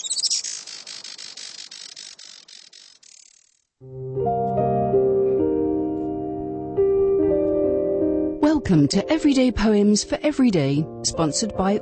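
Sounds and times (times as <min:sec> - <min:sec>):
Juan Fernandez firecrown hummingbird giving high dry buzzing chirps: 0:00.0 - 0:03.8
speech: 0:03.8 - 0:04.0, 0:08.7 - 0:11.7
music: 0:03.8 - 0:11.7.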